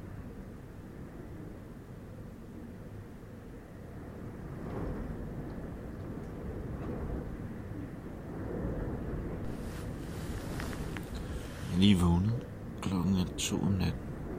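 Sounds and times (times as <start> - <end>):
strong storm wind roaring with buffeting gusts: 3.7 - 14.3
waves churning at a harbour: 9.4 - 12.6
speech: 11.8 - 12.3, 13.3 - 14.0.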